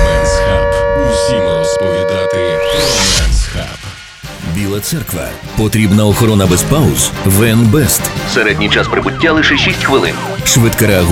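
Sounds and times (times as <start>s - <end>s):
air raid siren: 0.0s - 4.4s
speech: 4.8s - 11.0s.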